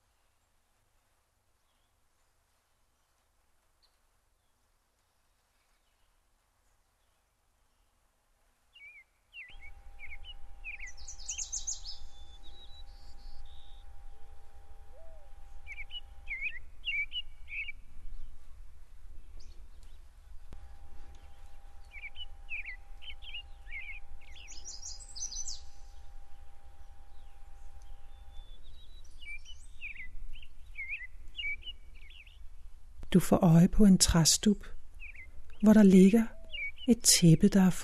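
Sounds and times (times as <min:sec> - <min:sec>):
birds singing and chirping: 0:08.8 - 0:37.8
faint sustained tone: 0:09.4 - 0:37.8
steady low hum: 0:09.5 - 0:37.8
speech: 0:33.1 - 0:34.7, 0:35.6 - 0:37.8.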